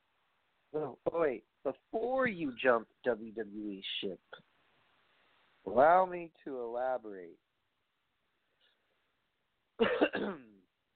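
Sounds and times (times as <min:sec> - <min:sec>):
speech: 0:02.1 - 0:04.5, 0:05.6 - 0:07.4, 0:09.8 - 0:10.5
phlegmy cough with throaty gravelly clearing: 0:09.8 - 0:10.5.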